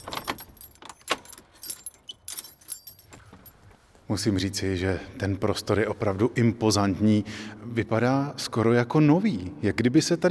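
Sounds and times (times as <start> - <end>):
metallic rattles of a lock being worked on a chapel door: 0.0 - 3.8
keys jangling and clinking: 0.0 - 3.9
speech: 4.1 - 10.2.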